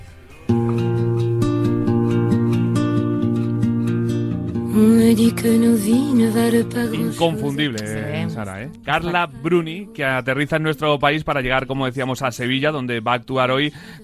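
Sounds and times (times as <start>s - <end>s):
steady sustained instrumental chords: 0.5s - 10.6s
pop singer singing over a fuller, brighter accompaniment: 4.7s - 11.3s
speech: 5.3s - 14.0s.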